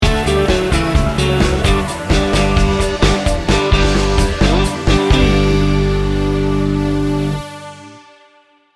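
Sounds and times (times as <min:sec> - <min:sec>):
upbeat soft rock sting bumper: 0:00.0 - 0:07.8.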